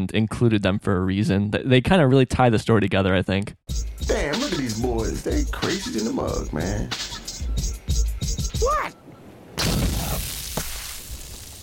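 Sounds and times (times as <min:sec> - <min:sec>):
speech: 0:00.0 - 0:07.2, 0:08.6 - 0:09.0
cartoon explosion: 0:09.6 - 0:11.6
second smaller crack: 0:09.6 - 0:11.6.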